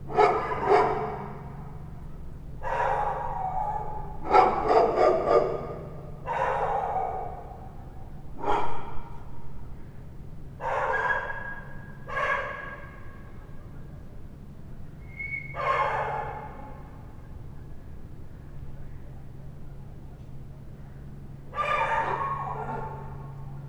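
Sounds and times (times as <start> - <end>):
two dogs at night: 0.1 - 1.9, 2.6 - 9.5, 10.6 - 13.4, 15.1 - 17.0, 21.5 - 23.6.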